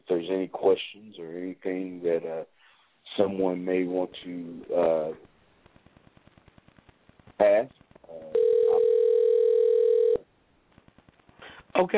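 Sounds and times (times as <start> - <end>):
quiet telephone line noise: 0.0 - 11.9
speech: 0.2 - 5.3, 7.4 - 8.3, 11.8 - 11.9
steady telephone tone placing a call back to a caller: 8.1 - 10.3.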